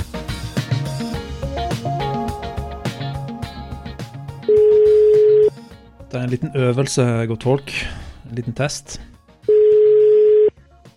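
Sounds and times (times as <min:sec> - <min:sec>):
steady telephone dialing tone: 0:04.5 - 0:05.6, 0:09.5 - 0:10.5
speech: 0:06.2 - 0:09.1.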